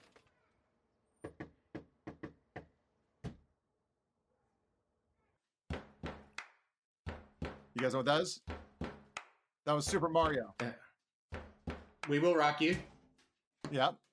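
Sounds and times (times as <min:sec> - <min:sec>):
drum-like syncopated knocking on a wooden door: 0:01.2 - 0:03.4, 0:05.7 - 0:06.4, 0:07.0 - 0:07.8, 0:08.4 - 0:10.7, 0:11.3 - 0:12.0
speech: 0:07.8 - 0:08.5, 0:09.7 - 0:10.8, 0:12.1 - 0:12.9, 0:13.7 - 0:14.0.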